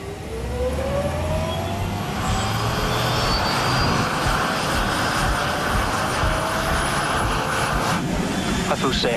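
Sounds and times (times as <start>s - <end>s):
small propeller aircraft engine during takeoff: 0.0s - 9.1s
wind noise: 1.8s - 9.1s.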